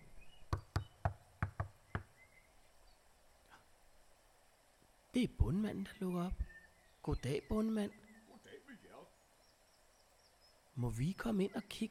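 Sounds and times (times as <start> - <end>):
birdsong: 0.0 - 4.3, 5.2 - 11.8
faint outdoor ambience: 0.0 - 11.8
knocking on a wooden farmhouse door: 0.5 - 2.1
speech: 5.2 - 8.0, 10.8 - 11.8.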